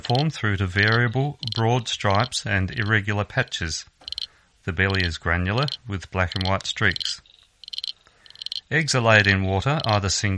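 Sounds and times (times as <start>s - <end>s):
speech: 0.0s - 3.9s, 4.7s - 7.3s, 8.7s - 10.3s
frog trilling call: 4.0s - 4.3s, 4.9s - 8.7s.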